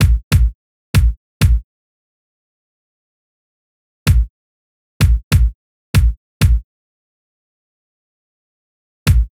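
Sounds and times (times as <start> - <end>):
hip hop kick drum: 0.0 - 1.6, 4.1 - 4.3, 5.0 - 6.6, 9.1 - 9.3.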